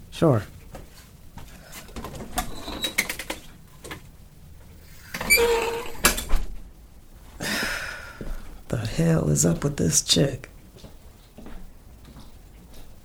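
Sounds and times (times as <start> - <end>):
speech: 0.2 - 0.6, 9.0 - 10.5
front door opening: 4.8 - 6.5.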